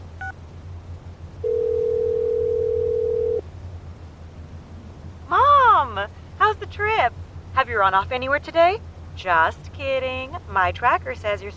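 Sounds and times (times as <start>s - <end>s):
low hum: 0.0s - 11.5s
telephone dial tone while dialing a number: 1.4s - 3.4s
speech: 6.7s - 11.5s.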